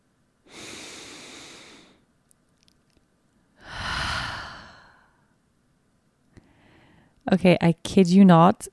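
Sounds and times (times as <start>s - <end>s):
person sitting in bed taking a deep breath: 0.5s - 2.0s, 3.6s - 5.4s, 6.4s - 7.2s
speech: 7.3s - 8.7s.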